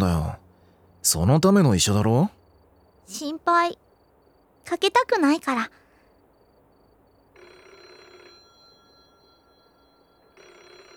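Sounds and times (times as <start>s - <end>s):
speech: 1.0s - 2.4s, 3.1s - 3.8s, 4.7s - 5.8s
telephone ringing: 7.3s - 10.9s.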